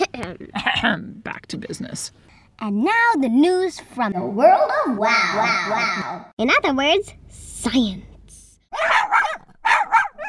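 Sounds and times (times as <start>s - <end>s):
speech: 0.0s - 8.1s
dog barking sharply: 4.5s - 6.3s, 8.7s - 10.2s.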